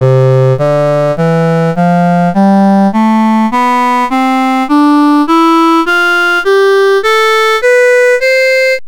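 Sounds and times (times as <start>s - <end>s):
viol: 0.0s - 8.8s.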